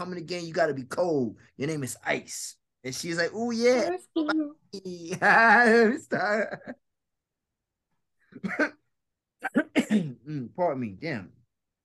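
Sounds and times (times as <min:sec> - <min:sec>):
speech: 0:00.0 - 0:06.8, 0:08.4 - 0:08.8, 0:09.4 - 0:11.4
stuck cough: 0:08.3 - 0:10.4.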